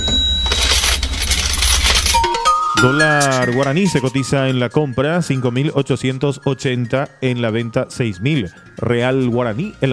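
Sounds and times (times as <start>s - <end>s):
bright ringing tones: 0.0s - 4.4s
coins clattering and jingling: 0.4s - 4.1s
speech: 2.8s - 9.9s.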